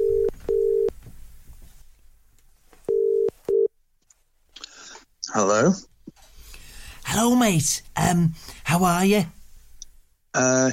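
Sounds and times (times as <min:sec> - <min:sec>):
telephone keypad dialling tones: 0:00.0 - 0:00.9
faint noise: 0:00.0 - 0:10.7
speech: 0:05.4 - 0:05.9, 0:07.1 - 0:09.4, 0:10.3 - 0:10.7.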